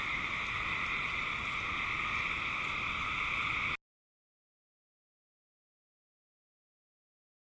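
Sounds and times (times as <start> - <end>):
Eastern gray treefrog chorus trilling: 0.0 - 3.8.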